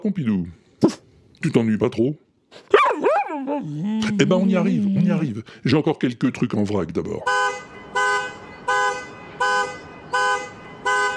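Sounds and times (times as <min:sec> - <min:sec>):
speech: 0:00.0 - 0:02.8, 0:03.4 - 0:07.5
car alarm honking: 0:07.2 - 0:11.1.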